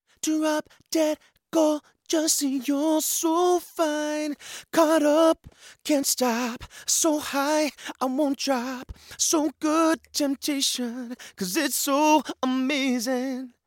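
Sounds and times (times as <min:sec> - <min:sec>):
male vocals: 0:00.1 - 0:13.6.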